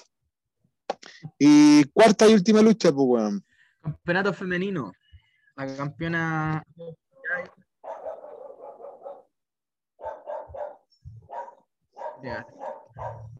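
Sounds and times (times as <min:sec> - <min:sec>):
speech: 0:01.3 - 0:05.0, 0:05.6 - 0:07.5, 0:12.2 - 0:13.3
dog barking and yipping: 0:07.8 - 0:09.4, 0:10.0 - 0:13.3.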